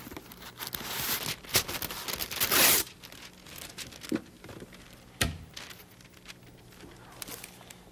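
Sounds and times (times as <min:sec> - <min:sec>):
wax paper tearing: 0:00.0 - 0:04.1
wax paper rustling as it is pulled out to make a comb instrument: 0:00.0 - 0:07.9.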